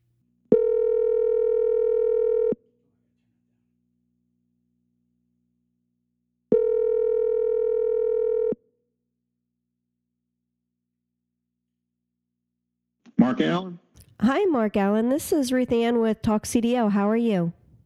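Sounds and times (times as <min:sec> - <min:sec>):
telephone tones while a call is dialed: 0:00.5 - 0:02.6, 0:06.5 - 0:08.6
speech: 0:13.3 - 0:17.6.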